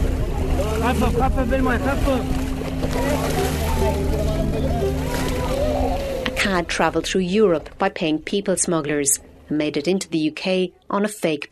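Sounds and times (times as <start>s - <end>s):
indistinct voices calling out: 0.0s - 7.6s
waves rushing at sea: 0.0s - 7.6s
boat engine droning at sea: 0.0s - 9.9s
speech: 0.8s - 4.8s, 6.4s - 11.5s.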